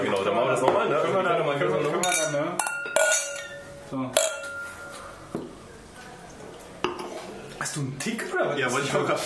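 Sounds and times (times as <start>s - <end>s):
speech: 0.4s - 2.8s, 3.9s - 4.3s, 7.8s - 9.2s
glasses clinking together in a toast: 2.0s - 5.5s.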